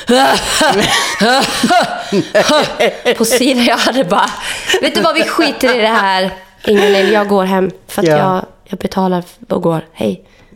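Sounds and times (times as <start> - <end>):
person imitating coughing during a spa massage: 0.0 - 2.3
laughter: 0.0 - 7.4
speech: 0.1 - 10.5.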